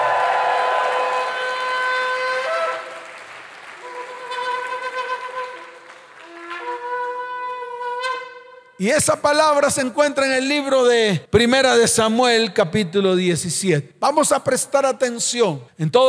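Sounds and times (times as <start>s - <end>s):
crowd applause: 0.0s - 6.8s
trumpet blasts in a church service: 1.0s - 8.8s
speech: 8.8s - 16.0s.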